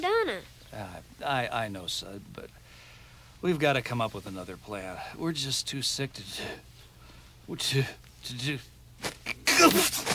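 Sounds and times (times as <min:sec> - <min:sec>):
speech: 0:00.2 - 0:02.7, 0:03.4 - 0:06.7, 0:07.5 - 0:10.1
person sneezing: 0:09.0 - 0:10.1.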